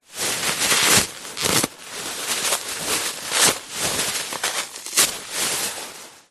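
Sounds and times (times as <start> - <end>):
household toilet paper mass ripping and tearing: 0.4 - 5.3.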